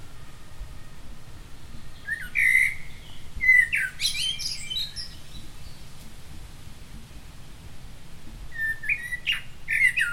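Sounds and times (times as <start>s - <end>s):
common blackbird Turdus merula song: 0.0s - 6.1s, 8.4s - 10.1s
constant low-pitched background noise: 0.0s - 10.1s.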